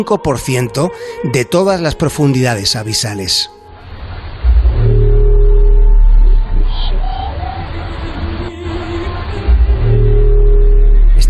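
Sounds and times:
speech: 0.0s - 3.6s
steady droning tones: 0.0s - 11.2s
low underwater rumble in Challenger Deep, Mariana Trench: 4.0s - 8.1s, 9.4s - 11.2s.

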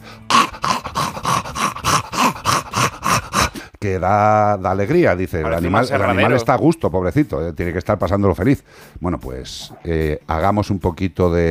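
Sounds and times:
person imitating labored snorting breathing of a brachycephalic dog: 0.0s - 3.7s
speech: 3.8s - 11.4s.

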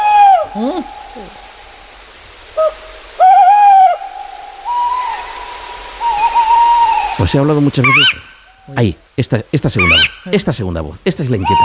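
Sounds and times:
owl hooting in a dark forest in Spain: 0.0s - 1.5s, 2.5s - 8.7s, 9.8s - 10.3s, 11.4s - 11.6s
speech: 0.6s - 1.5s, 7.2s - 11.6s.

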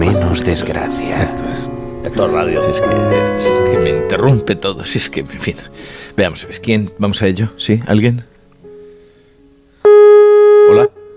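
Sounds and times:
speech: 0.4s - 8.3s, 10.7s - 10.9s
faint steady telephone tone: 9.8s - 10.9s.

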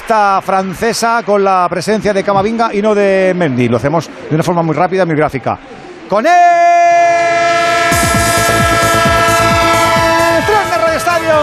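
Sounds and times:
speech: 0.1s - 6.6s
train sound effect horn blaring: 7.1s - 10.8s.

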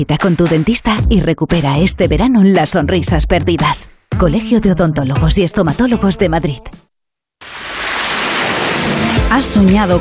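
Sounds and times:
speech: 0.0s - 6.8s, 9.3s - 9.9s
sea waves murmuring: 7.4s - 9.8s.

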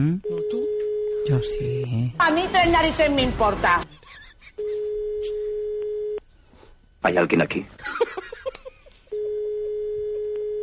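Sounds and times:
speech: 0.0s - 0.3s, 1.3s - 4.2s, 7.0s - 8.0s
telephone ringing with a steady electronic tone: 4.6s - 6.2s, 9.1s - 10.6s.

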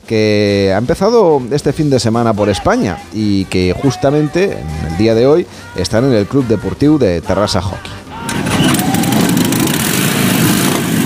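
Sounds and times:
speech: 0.1s - 8.0s
Harley-Davidson motorcycle engine roaring: 8.0s - 11.0s.

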